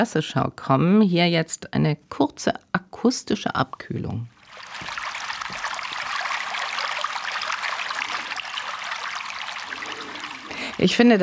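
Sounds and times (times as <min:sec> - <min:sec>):
speech: 0:00.0 - 0:05.0, 0:10.8 - 0:11.2
water splashing and trickling: 0:04.3 - 0:11.2.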